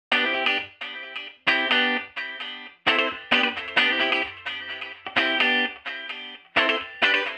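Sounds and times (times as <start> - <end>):
electric guitar with delay effect: 0.1 - 7.3.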